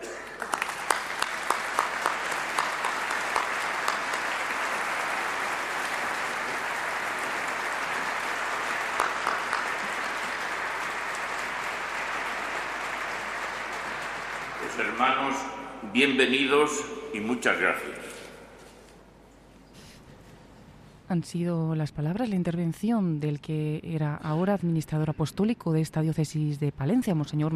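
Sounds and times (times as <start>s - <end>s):
large crowd applauding in a cathedral: 0.0s - 17.8s
speech: 14.8s - 18.2s, 21.1s - 27.5s.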